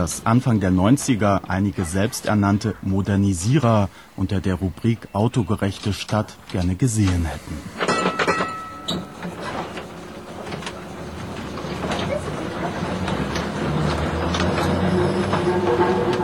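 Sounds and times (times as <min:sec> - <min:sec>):
speech: 0:00.0 - 0:07.8
old tram rolling along rails: 0:00.0 - 0:16.2
metallic clanks: 0:07.7 - 0:16.2.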